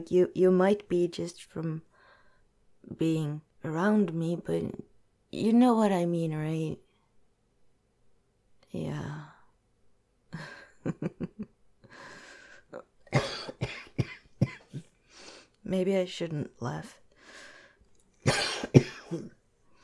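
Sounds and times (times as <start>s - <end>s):
speech: 0.0s - 1.9s, 2.8s - 6.8s, 8.7s - 9.3s, 15.7s - 17.0s, 18.3s - 19.4s
repeated fits of harsh coughing: 13.0s - 14.9s, 18.2s - 19.4s.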